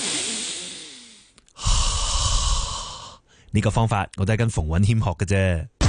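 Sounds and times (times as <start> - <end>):
deep breath: 0.0 - 3.5
speech: 3.5 - 5.8.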